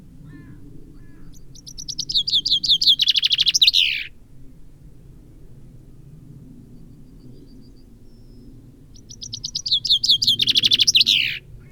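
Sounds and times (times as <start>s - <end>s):
common chaffinch Fringilla coelebs song fragment: 1.3s - 4.1s, 9.0s - 11.4s.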